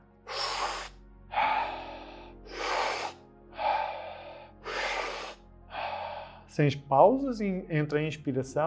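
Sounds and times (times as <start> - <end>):
steady rhythmic deep breathing with airy inhales and exhales: 0.0 - 6.6
speech: 6.6 - 8.6.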